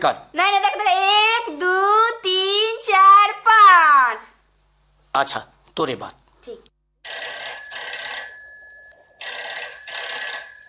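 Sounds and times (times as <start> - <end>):
speech: 0.0 - 4.3, 5.2 - 6.7
telephone ringing with electronic trill: 7.0 - 10.6.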